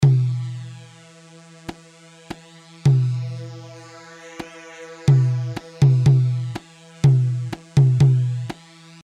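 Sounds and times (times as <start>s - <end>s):
tabl drum hits recorded without processing: 5.1s - 8.4s.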